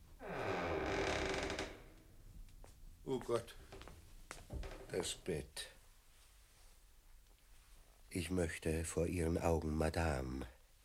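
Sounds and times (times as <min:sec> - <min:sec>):
quiet hiss: 0:00.0 - 0:10.8
door being opened: 0:00.2 - 0:02.1, 0:04.5 - 0:05.0
speech: 0:03.1 - 0:03.7, 0:04.9 - 0:05.8, 0:08.1 - 0:10.6.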